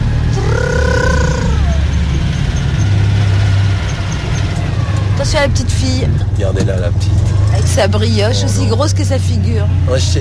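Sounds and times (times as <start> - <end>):
car engine running while driving: 0.0 - 10.2
high whine gliding downward: 0.3 - 2.3
speech: 5.4 - 10.2.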